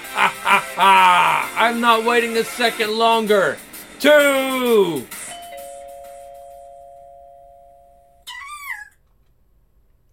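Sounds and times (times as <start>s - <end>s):
laughter: 0.0s - 1.9s
speech: 0.8s - 1.0s, 1.6s - 5.2s
doorbell ringing with a sustained electronic tone: 5.3s - 8.2s.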